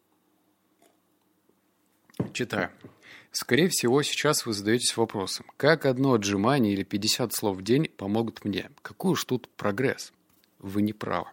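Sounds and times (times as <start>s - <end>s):
person sipping water: 0.8s - 1.3s
speech: 2.4s - 11.3s.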